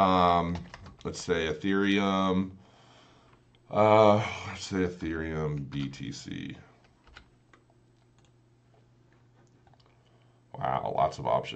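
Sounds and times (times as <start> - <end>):
speech: 0.0 - 2.6, 3.7 - 6.7, 10.6 - 11.5
typing on a computer keyboard: 0.5 - 1.1, 6.8 - 8.3.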